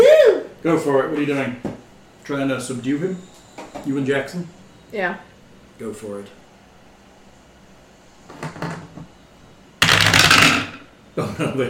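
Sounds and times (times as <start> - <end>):
speech: 0.6 - 6.4, 11.2 - 11.6
dice clattering on a hard table surface: 9.8 - 10.8.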